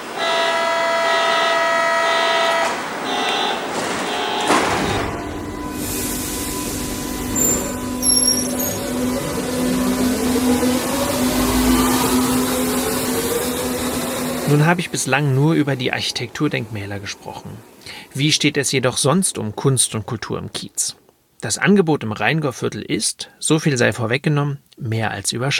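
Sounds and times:
Berlin U-Bahn train motor whining as it accelerates: 0:00.0 - 0:15.1
Berlin U-Bahn train starting with a clunk and rumble: 0:03.6 - 0:14.6
steady electronic tone at Heidelberger Platz U-Bahn station in Berlin: 0:04.9 - 0:14.3
speech: 0:14.7 - 0:25.5.

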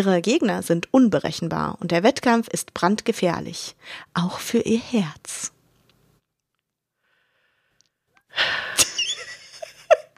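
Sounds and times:
speech: 0:00.0 - 0:05.6, 0:08.4 - 0:08.9
deep airy breathing: 0:07.0 - 0:08.8.

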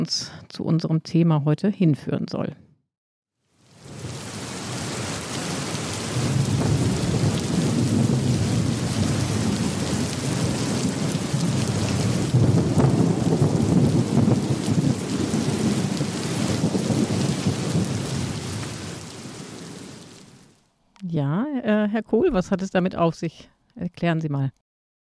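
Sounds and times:
speech: 0:00.0 - 0:02.6, 0:21.2 - 0:24.6
heavy downpour of rain: 0:03.5 - 0:20.6
deep rolling rumbles of thunder: 0:03.7 - 0:20.5.

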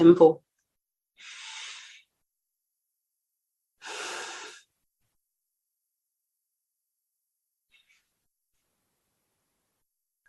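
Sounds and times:
deep breaths in through the nose and into the belly: 0:01.2 - 0:02.1, 0:03.8 - 0:04.7.

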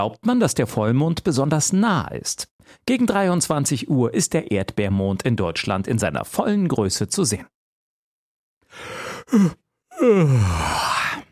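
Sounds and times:
speech: 0:00.0 - 0:07.6, 0:08.7 - 0:10.9
person yawning: 0:08.8 - 0:11.3.

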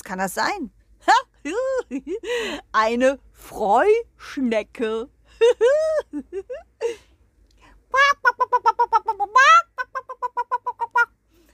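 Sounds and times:
speech: 0:00.1 - 0:01.2, 0:01.9 - 0:07.0
human voice imitating hens' laughter with staccato clucks: 0:07.9 - 0:11.2.

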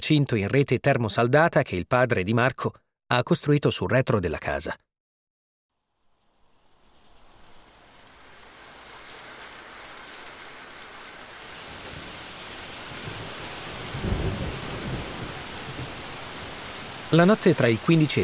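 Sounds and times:
speech: 0:00.1 - 0:04.9, 0:17.1 - 0:18.2
heavy rain pouring: 0:06.4 - 0:18.2
low rumble of thunder: 0:11.7 - 0:17.5.

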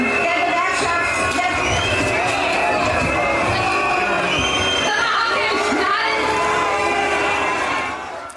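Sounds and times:
large outdoor crowd booing and shouting at a rally: 0:00.0 - 0:08.3.

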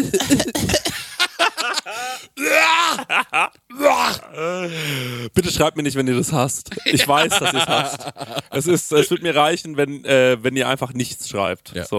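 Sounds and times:
laughter: 0:00.0 - 0:03.6, 0:06.7 - 0:09.5
harsh coughing: 0:00.0 - 0:04.4
strained drawn-out groaning vocal sounds: 0:01.8 - 0:05.1
speech: 0:05.6 - 0:11.9.

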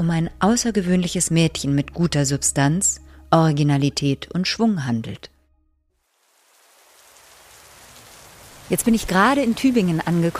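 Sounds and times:
speech: 0:00.0 - 0:05.3, 0:08.7 - 0:10.3
heavy rain pouring down: 0:06.0 - 0:10.3.

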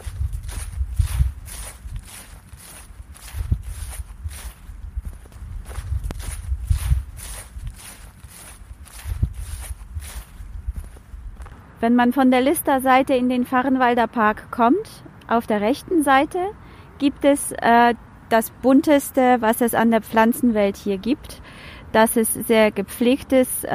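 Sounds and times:
footsteps crunching along a path in a city park in December: 0:00.0 - 0:11.7
speech: 0:11.8 - 0:23.7.

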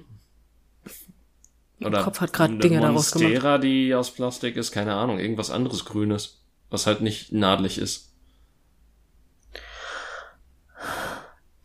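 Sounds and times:
speech: 0:01.8 - 0:08.1
heavy breathing into a microphone: 0:09.6 - 0:11.4.

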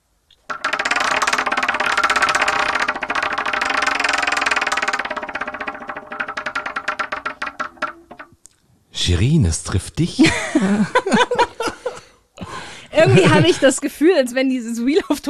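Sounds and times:
prize wheel spun during a game ratcheting: 0:00.4 - 0:08.4
speech: 0:09.0 - 0:11.5, 0:13.0 - 0:15.2
laughter: 0:10.0 - 0:13.9.

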